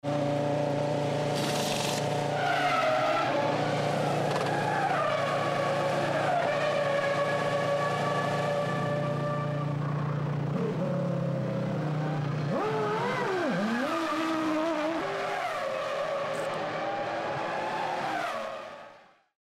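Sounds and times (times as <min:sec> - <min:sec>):
Formula 1 race car pit stop: 0:00.1 - 0:11.0, 0:11.8 - 0:19.2.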